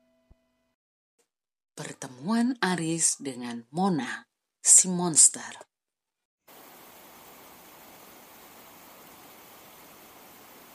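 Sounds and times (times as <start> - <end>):
speech: 1.8 - 5.7
gentle rain at night: 6.5 - 10.7.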